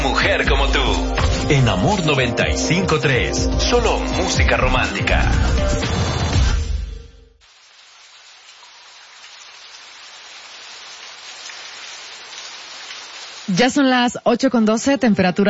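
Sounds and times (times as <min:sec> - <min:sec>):
speech: 0:00.2 - 0:06.0, 0:13.5 - 0:15.4
steady rain falling: 0:07.4 - 0:14.9.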